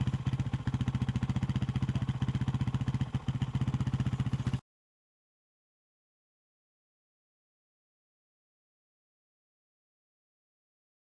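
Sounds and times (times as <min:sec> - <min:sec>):
motorcycle idling: 0:00.0 - 0:04.6.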